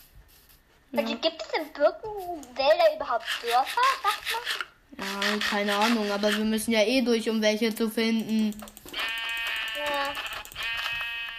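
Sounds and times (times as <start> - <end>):
speech: 0.9 - 8.8
sheep bleating in a video game: 9.0 - 11.3.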